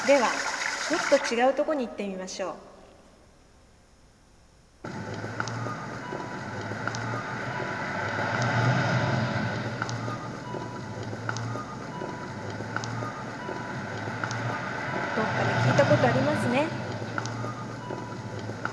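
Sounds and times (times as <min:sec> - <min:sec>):
speech: 0:00.1 - 0:02.7
busy street traffic: 0:04.9 - 0:18.7
crossing signal beeping: 0:04.9 - 0:18.7.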